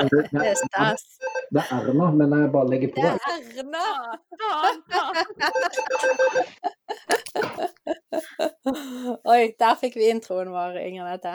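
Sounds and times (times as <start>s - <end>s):
people laughing: 0.0s - 1.0s, 1.6s - 9.3s
speech: 0.0s - 11.3s
phone ringing with bright melodic ringtone: 0.4s - 1.7s, 5.4s - 6.6s.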